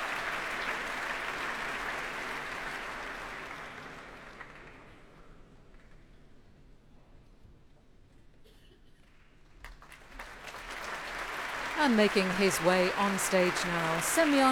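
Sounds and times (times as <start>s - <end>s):
large concert audience applause: 0.0s - 4.9s, 9.7s - 14.5s
speech: 11.8s - 14.5s.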